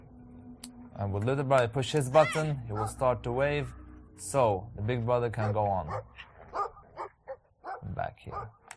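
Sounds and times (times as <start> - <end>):
speech: 1.0 - 6.3
angry dog barking aggressively: 5.9 - 8.6.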